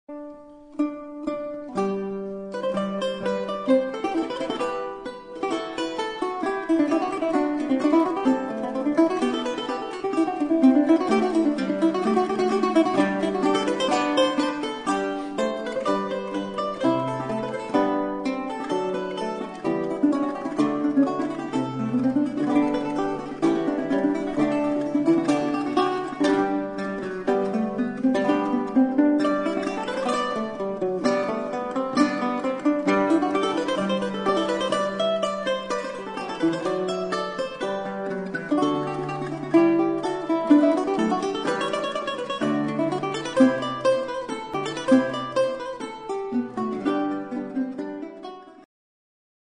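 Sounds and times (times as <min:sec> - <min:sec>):
canzona music: 0:00.1 - 0:48.6.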